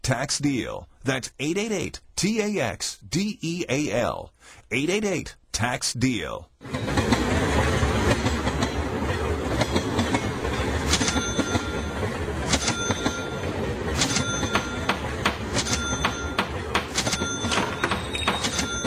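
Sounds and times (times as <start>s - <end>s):
speech: 0.1s - 7.0s
freight train moving goods rolling on rails: 6.6s - 18.8s
sharp metallic clacks of train wheels: 9.5s - 11.8s, 12.4s - 13.3s, 14.0s - 18.8s.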